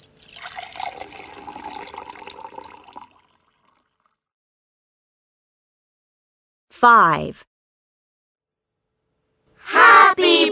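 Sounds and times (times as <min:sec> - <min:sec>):
water pouring into a glass: 0:00.0 - 0:04.3
speech: 0:06.8 - 0:07.5.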